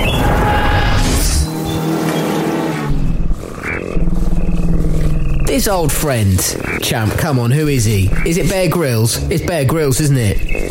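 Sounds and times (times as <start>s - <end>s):
car engine roaring and revving as the car pulls away: 0.0s - 10.7s
speech: 5.6s - 10.7s.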